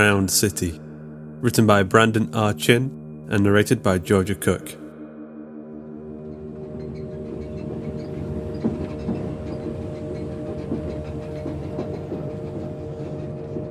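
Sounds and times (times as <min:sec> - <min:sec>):
speech: 0:00.0 - 0:04.8
train rolling along rails heard from inside the carriage: 0:06.9 - 0:13.6.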